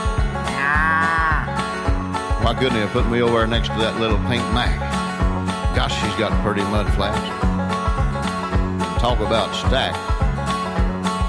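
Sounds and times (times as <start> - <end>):
steady low rhythmic thumping: 0.0 - 11.2
cattle mooing in a cattle truck: 0.5 - 1.6
speech: 2.5 - 5.0, 5.8 - 7.5, 9.0 - 10.1.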